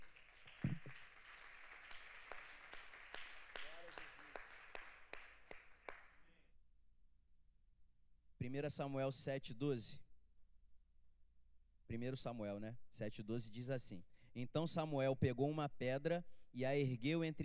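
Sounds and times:
audience at a church service applauding: 0.0s - 6.2s
speech: 8.4s - 10.0s, 11.9s - 17.4s.

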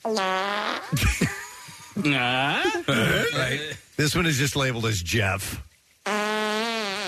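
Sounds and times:
loud buzzy fart: 0.0s - 1.3s, 6.0s - 7.0s
speech: 0.0s - 1.4s, 2.0s - 5.7s
laughter: 1.0s - 3.8s.

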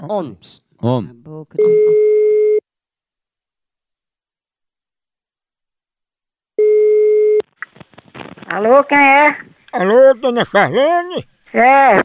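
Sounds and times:
speech: 0.0s - 2.1s, 8.5s - 12.0s
telephone call tone beeps while dialing: 1.6s - 2.6s, 6.6s - 7.4s.

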